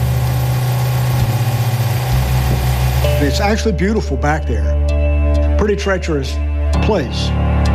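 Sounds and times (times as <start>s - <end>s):
sheriff's boat engine idling at Whiskey Bay: 0.0s - 3.8s
speech: 3.2s - 5.0s, 5.6s - 7.6s.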